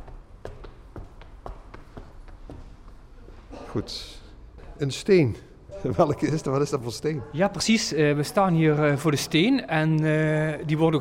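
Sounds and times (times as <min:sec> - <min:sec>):
footsteps climbing a staircase: 0:00.0 - 0:03.4
speech: 0:03.7 - 0:04.2, 0:04.8 - 0:10.9.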